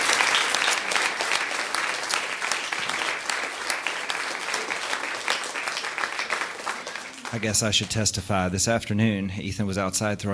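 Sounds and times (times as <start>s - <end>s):
room full of people applauding: 0.0s - 8.2s
speech: 7.3s - 10.3s.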